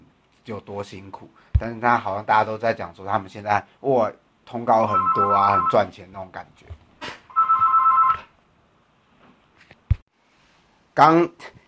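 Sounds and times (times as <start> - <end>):
speech: 0.5 - 6.8, 11.0 - 11.6
telephone ringing: 4.8 - 5.9, 7.3 - 8.3.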